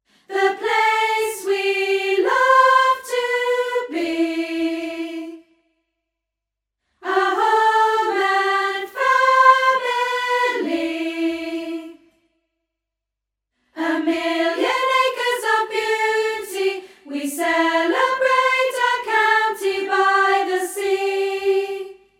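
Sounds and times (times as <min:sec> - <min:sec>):
soprano chorus singing: 0:00.2 - 0:05.5, 0:07.0 - 0:12.2, 0:13.8 - 0:22.1.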